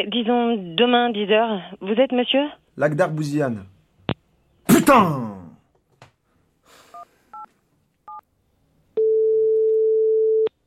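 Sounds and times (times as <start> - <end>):
speech: 0.0 - 3.7, 4.9 - 5.4
long steady mid-pitched busy tone after a phone call is cut off: 9.0 - 10.5.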